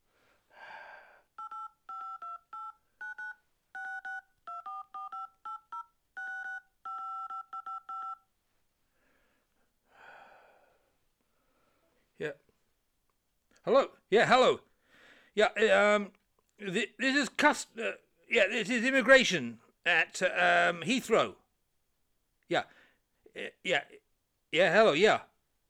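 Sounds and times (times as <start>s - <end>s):
soft breath-like noise: 0.0s - 1.3s, 8.8s - 12.1s
touch-tone phone keys dialling an international number: 1.4s - 8.2s
speech: 12.2s - 12.4s, 13.6s - 14.7s, 15.4s - 21.4s, 22.5s - 22.8s, 23.4s - 25.3s.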